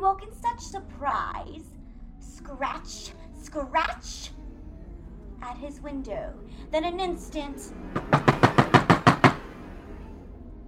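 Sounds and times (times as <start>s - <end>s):
speech: 0.0s - 1.7s, 2.4s - 4.4s, 5.4s - 8.7s
sharp knocks: 7.9s - 9.6s.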